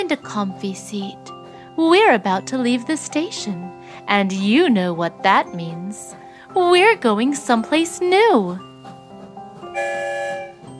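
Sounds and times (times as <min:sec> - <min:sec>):
speech: 0:00.0 - 0:08.7
train whistle: 0:09.7 - 0:10.6.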